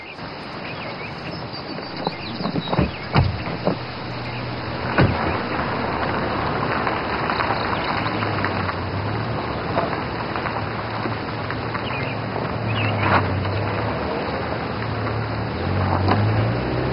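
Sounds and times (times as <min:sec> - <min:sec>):
steady low hum of a vehicle interior: 0:00.0 - 0:16.9
car door opening with mechanical clicks and a dull clunk: 0:02.0 - 0:05.7.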